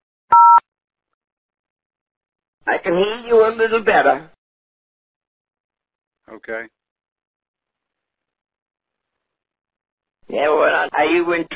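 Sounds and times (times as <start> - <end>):
telephone keypad button tone: 0.3 - 0.6
speech: 2.6 - 4.3, 6.3 - 6.8, 10.3 - 11.5.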